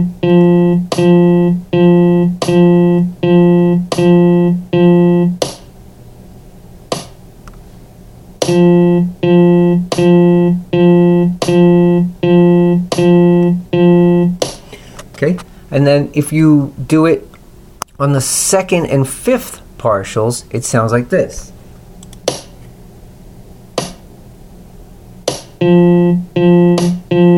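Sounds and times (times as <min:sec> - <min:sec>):
speech: 0:00.0 - 0:01.6, 0:16.2 - 0:17.3, 0:18.0 - 0:21.5, 0:25.7 - 0:26.0
pitched sustained tone repeated as even eighth notes: 0:00.0 - 0:05.4, 0:08.4 - 0:14.5, 0:25.6 - 0:27.3.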